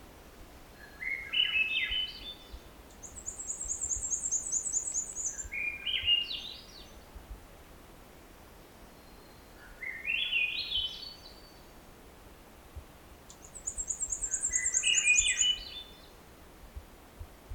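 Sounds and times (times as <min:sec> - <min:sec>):
black-and-white warbler song: 0:00.7 - 0:07.2, 0:08.7 - 0:11.9, 0:13.2 - 0:16.3.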